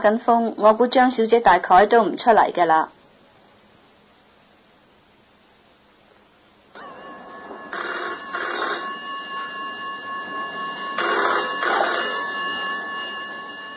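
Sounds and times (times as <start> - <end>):
speech: 0.0 - 3.0
steady tonal hum: 5.9 - 13.7
telephone ringing: 6.8 - 13.7.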